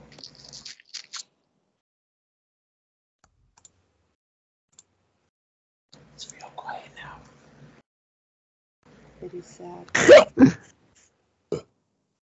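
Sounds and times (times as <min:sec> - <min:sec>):
quiet whispery murmuring: 0:06.2 - 0:07.3
hiccup combined with a burp: 0:09.9 - 0:10.7, 0:11.5 - 0:11.7.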